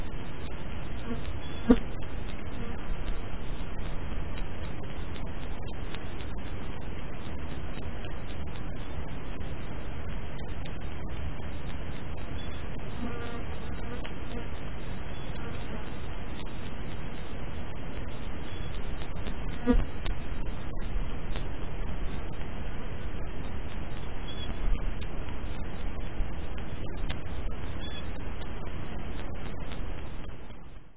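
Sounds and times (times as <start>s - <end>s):
broad hiss of background noise: 0.0s - 30.9s
crickets chirping: 0.0s - 30.9s.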